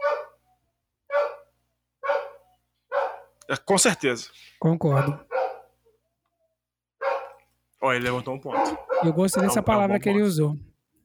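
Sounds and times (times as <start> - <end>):
dog barking: 0.0 - 0.4, 1.1 - 3.4, 4.9 - 5.8, 7.0 - 7.5, 8.5 - 9.6
speech: 3.5 - 5.3, 7.9 - 10.7.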